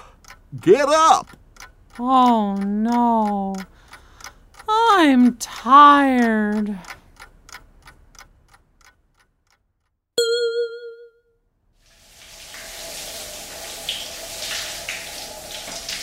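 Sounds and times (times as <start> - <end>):
clock ticking: 0.0 - 10.4
speech: 0.5 - 1.4, 2.0 - 3.7, 4.7 - 6.9
hot shower water running: 11.8 - 16.0.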